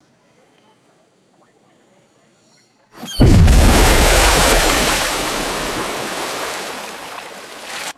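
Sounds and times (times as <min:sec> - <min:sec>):
massive heavy crash into water: 0:03.0 - 0:07.9.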